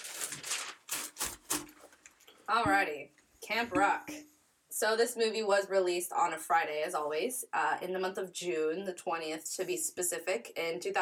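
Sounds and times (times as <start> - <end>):
papers being shuffled back into order: 0.0 - 2.3
speech: 2.5 - 10.9.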